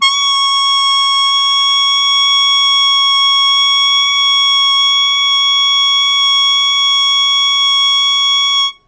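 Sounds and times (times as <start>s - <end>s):
loud harmonica note C#2 with attack and sustain: 0.0s - 8.8s.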